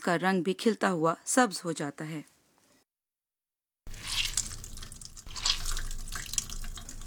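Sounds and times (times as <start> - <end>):
speech: 0.0 - 2.3
tap water splashing into a sink while rinsing spinach: 3.9 - 7.0.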